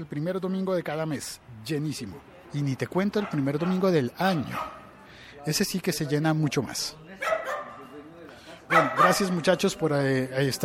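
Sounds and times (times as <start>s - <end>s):
speech: 0.0s - 4.8s, 5.4s - 7.3s, 8.7s - 10.6s
dog barking and yelping: 3.2s - 4.9s, 7.2s - 7.8s, 8.7s - 9.3s.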